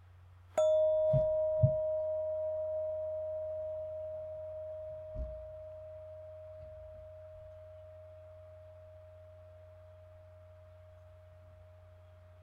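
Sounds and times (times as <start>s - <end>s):
soft low thumps: 0.6s - 3.2s, 4.8s - 9.0s
mindfulness bell ringing: 0.6s - 10.6s.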